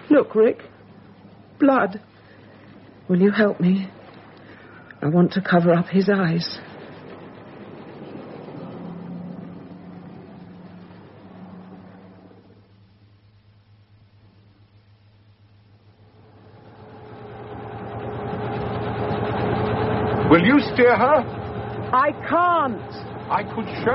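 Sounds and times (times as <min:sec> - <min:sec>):
speech: 0:00.2 - 0:00.8, 0:01.6 - 0:02.1, 0:03.1 - 0:04.0, 0:05.0 - 0:06.7, 0:20.8 - 0:21.4, 0:22.0 - 0:23.9
engine running: 0:06.2 - 0:13.8, 0:15.5 - 0:23.9.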